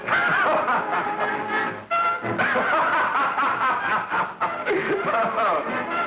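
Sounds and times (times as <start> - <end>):
person laughing: 0.1 - 1.3, 2.4 - 6.0.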